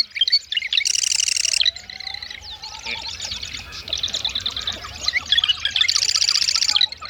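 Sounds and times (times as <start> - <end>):
marsh wren singing rapid buzzy rattling trills: 0.0 - 7.0
marsh wren chirps and whistles: 0.8 - 1.6, 5.8 - 6.8.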